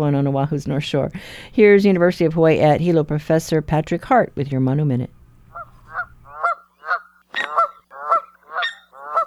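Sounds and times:
speech: 0:00.0 - 0:05.2
Canada goose honking: 0:05.5 - 0:09.2.

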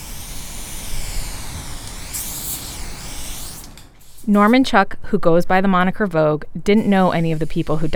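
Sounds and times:
aerosol spray paint can hissing as an artist paints a mural: 0:00.0 - 0:04.5
speech: 0:04.2 - 0:07.9.

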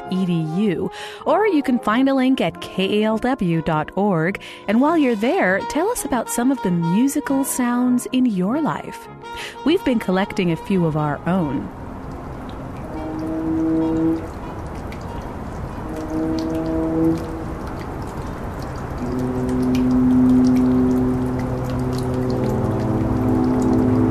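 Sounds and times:
speech: 0:00.1 - 0:11.8
foghorn blasts: 0:03.4 - 0:24.1
dripping tap: 0:09.3 - 0:24.1.

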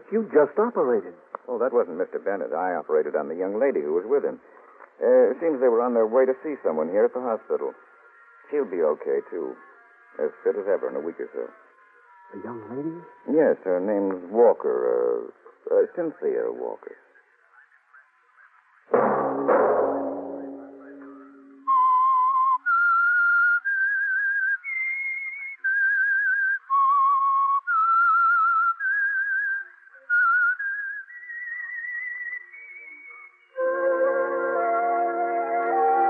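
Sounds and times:
speech: 0:00.1 - 0:07.9, 0:08.5 - 0:11.6, 0:12.3 - 0:17.0, 0:18.9 - 0:19.6
whistled theme tune: 0:20.6 - 0:36.0.

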